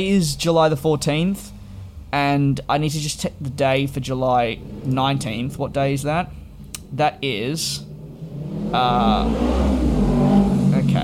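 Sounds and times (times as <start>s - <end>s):
speech: 0.0s - 1.5s, 2.1s - 7.9s, 8.7s - 10.4s
motorbike engine revving outside: 3.7s - 11.0s.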